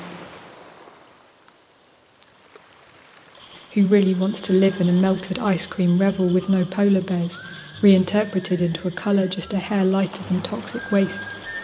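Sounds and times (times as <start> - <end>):
ocean waves: 0.0 - 11.6
speech: 3.8 - 11.4.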